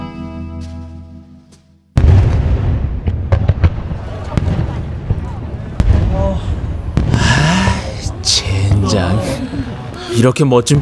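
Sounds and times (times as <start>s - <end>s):
fireworks bursting with sharp booms and crackles: 1.9s - 9.9s
crowd murmuring: 3.8s - 10.8s
speech: 10.2s - 10.8s.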